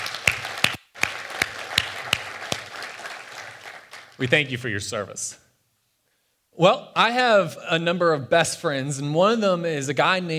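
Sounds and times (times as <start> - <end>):
audience applauding past student ministry leaders: 0.0 - 4.2
speech: 4.2 - 5.4, 6.6 - 10.3.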